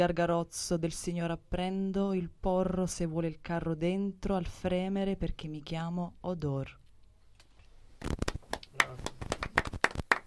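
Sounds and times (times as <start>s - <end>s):
speech: 0.0s - 6.8s
scattered sharp hand claps: 8.0s - 10.2s.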